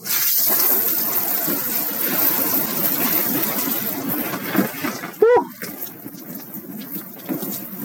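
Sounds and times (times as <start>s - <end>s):
cold shower water running: 0.0s - 7.8s
short high-pitched vocal yelp: 5.2s - 5.5s.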